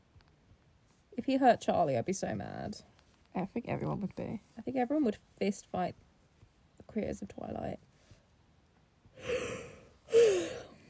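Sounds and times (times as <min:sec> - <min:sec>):
speech: 0:01.2 - 0:06.0, 0:06.9 - 0:07.9
person yawning: 0:09.2 - 0:10.8.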